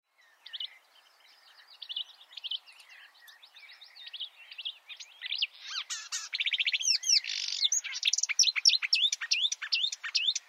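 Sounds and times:
marsh warbler song: 0.0 - 10.4.

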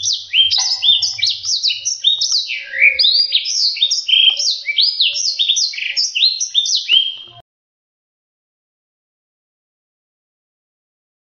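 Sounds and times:
black-throated seedeater singing: 0.0 - 5.9.

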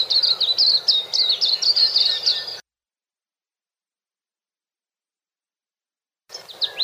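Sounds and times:
white-eye twittering: 0.0 - 2.6, 6.3 - 6.8.

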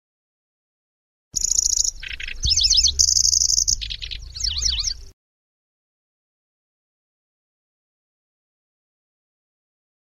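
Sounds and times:
Lanceolated warbler song: 1.4 - 5.2.

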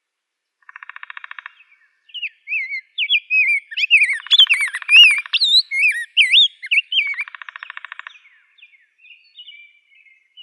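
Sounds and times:
Rose-breasted grosbeak singing sweet looping warbled whistles: 2.2 - 7.4.

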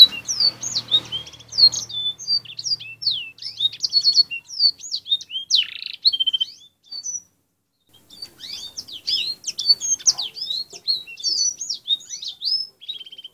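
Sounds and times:
Canary song for fill-in training: 0.0 - 13.3.

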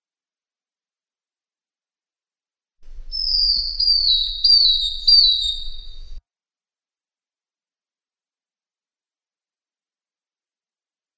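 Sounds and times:
bird singing one long high pure whistle: 3.1 - 6.2.

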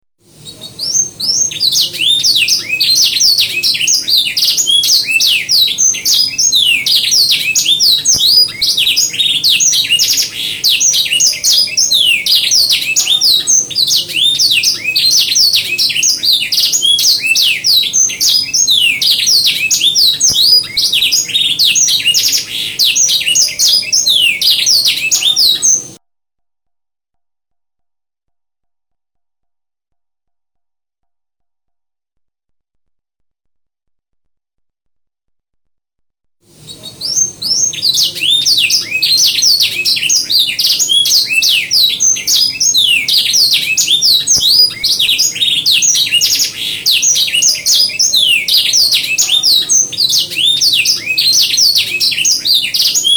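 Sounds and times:
canary chirping: 0.3 - 26.0, 36.6 - 53.1.

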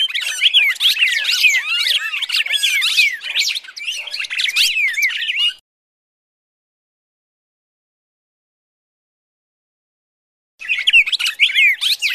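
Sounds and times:
Red-crested Cardinal fighting calls with rapid overlapping chirps and downslurred whistles: 0.0 - 5.6, 10.6 - 12.1.

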